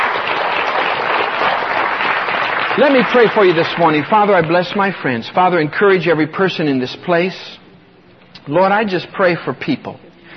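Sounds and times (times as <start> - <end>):
church congregation applauding with hand claps of praise: 0.0 - 5.3
speech: 2.8 - 7.6, 8.5 - 10.0.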